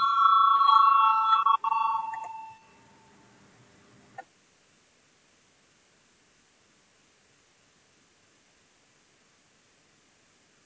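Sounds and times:
electric bell rung in a parliamentary session to call a vote: 0.0 - 3.1.

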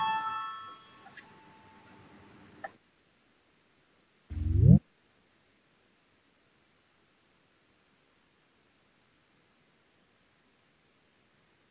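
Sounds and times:
parliamentary voting bell electronic chime: 0.0 - 1.1
short loud rising tone of a parliamentary voting signal: 4.3 - 4.8.

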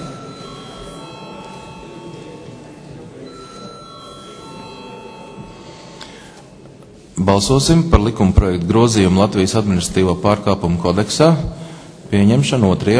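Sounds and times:
electric bell in a parliament chamber rung to summon members to a vote: 0.0 - 2.6, 3.2 - 6.3
speech: 7.2 - 12.9.

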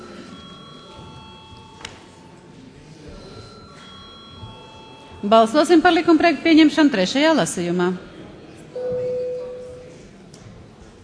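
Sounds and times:
faint murmuring: 0.0 - 11.0
parliamentary voting bell ringing with sustained electric tone: 0.1 - 2.5, 3.2 - 6.6
speech: 5.2 - 8.1.

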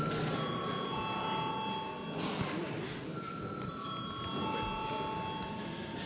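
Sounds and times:
electric bell ringing in the Latvian parliament chamber before a vote: 0.0 - 2.2, 3.2 - 5.7.

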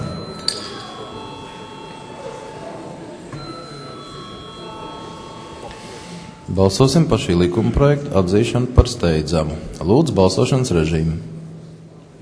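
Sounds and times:
parliament chamber bell rung before a vote: 0.0 - 7.6
speech: 6.5 - 11.3.

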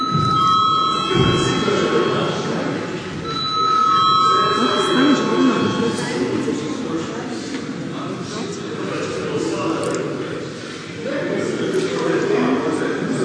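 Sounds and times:
parliament chamber electric bell ringing before a vote: 0.0 - 6.6
murmur of many people talking in a large hall: 0.0 - 13.2.

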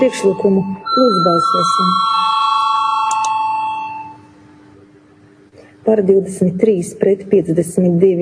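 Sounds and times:
speech: 0.0 - 2.3, 5.9 - 8.2
electric voting bell ringing in parliament: 0.0 - 4.2
electric bell clicking: 1.3 - 4.1.

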